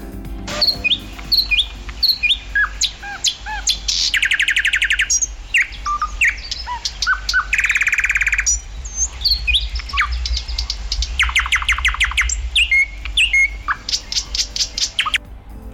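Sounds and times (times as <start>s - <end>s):
common nightingale singing: 0.0s - 15.7s
low steady hum: 0.0s - 15.7s.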